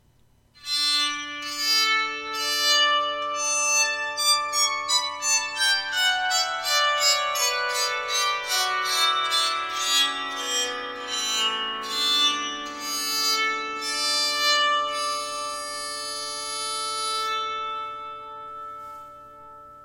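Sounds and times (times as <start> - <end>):
bowed psaltery playing a scale: 0.6 - 19.8.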